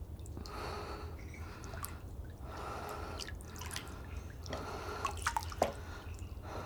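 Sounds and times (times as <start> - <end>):
water lapping in soft breathy washes: 0.1 - 6.6.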